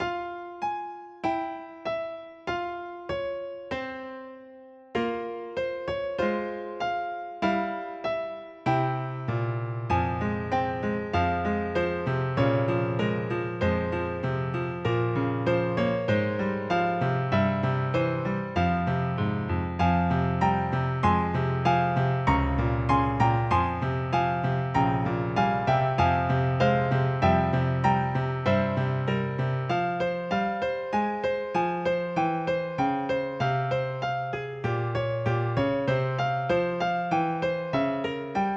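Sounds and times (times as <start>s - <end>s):
piano song: 0.0s - 38.5s.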